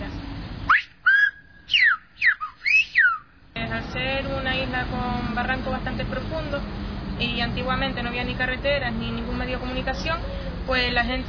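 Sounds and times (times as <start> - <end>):
Silbo whistled language phrases, loud and shrill: 0.7 - 3.3
speech: 4.8 - 11.2.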